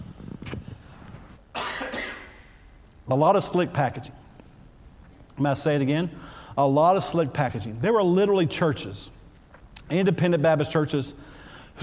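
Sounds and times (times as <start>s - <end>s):
preacher coughing during a sermon: 1.5s - 2.5s
speech: 3.1s - 4.3s, 5.4s - 9.2s, 9.9s - 11.4s.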